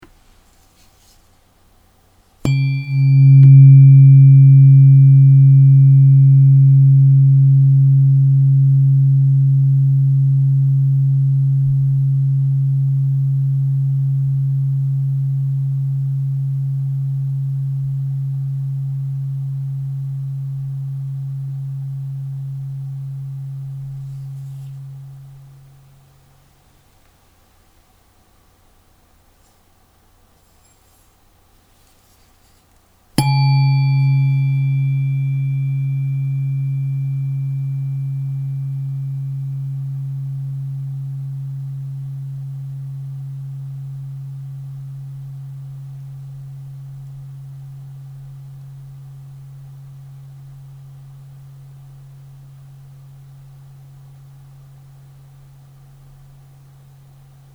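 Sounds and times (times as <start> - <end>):
mid Om tuning fork ringing: 2.4 - 26.3, 33.2 - 50.4.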